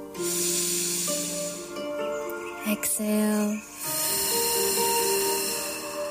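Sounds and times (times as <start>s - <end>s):
soft sustained tones: 0.0s - 6.0s
deep breath in and long exhale during a guided meditation: 0.1s - 2.0s, 3.8s - 6.0s.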